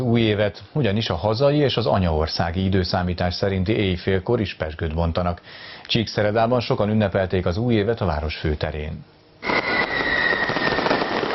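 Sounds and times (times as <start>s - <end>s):
speech: 0.0s - 9.2s
New Year's fireworks crackling and popping in Csíkszereda Transylvania: 9.4s - 11.3s
steady high ringing tone: 9.4s - 11.3s.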